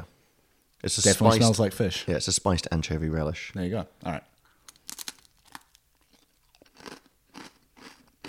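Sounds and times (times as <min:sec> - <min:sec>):
speech: 0:00.8 - 0:04.3
person crunching on a cracker while eating: 0:04.6 - 0:08.2.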